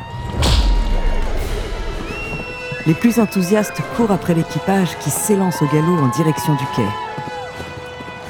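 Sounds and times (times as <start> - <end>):
distant cannon shot starting a race in San Francisco: 0.2 - 2.7
speech: 2.9 - 7.1.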